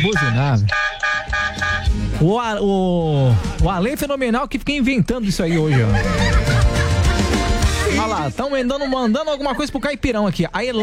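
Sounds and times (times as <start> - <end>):
speech: 0.0 - 0.9, 1.6 - 6.5, 7.9 - 10.8
car horns honking: 0.0 - 2.0
laughter: 5.2 - 10.0.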